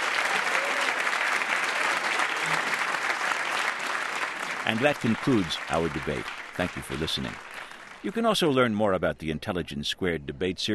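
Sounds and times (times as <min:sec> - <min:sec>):
audience applauding the winning team of a debate: 0:00.0 - 0:08.4
speech: 0:04.7 - 0:10.7.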